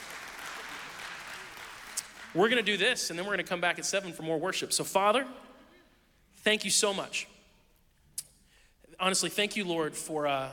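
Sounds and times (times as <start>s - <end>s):
audience of a room-sized crowd clapping: 0.0s - 2.6s
speech: 2.3s - 5.5s, 6.4s - 7.4s, 9.0s - 10.5s.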